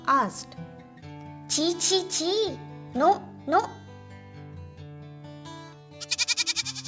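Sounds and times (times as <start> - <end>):
speech: 0.1 - 0.8, 1.5 - 3.8
goat bleating with quavering wobble: 6.0 - 6.8.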